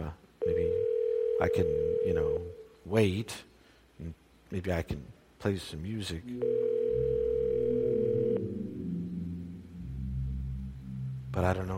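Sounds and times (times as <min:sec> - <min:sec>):
electronic telephone line ringing tone: 0:00.4 - 0:02.6, 0:06.3 - 0:09.2
speech: 0:01.4 - 0:06.8, 0:11.4 - 0:11.7
faint telephone line noise: 0:06.2 - 0:11.7
low rumbling hum: 0:06.3 - 0:11.7.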